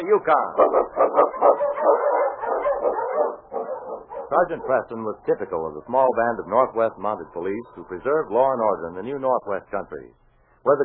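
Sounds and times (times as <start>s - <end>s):
speech: 0.1s - 1.4s, 4.3s - 10.8s
husky sled dog barking and yipping excitedly: 0.6s - 4.9s.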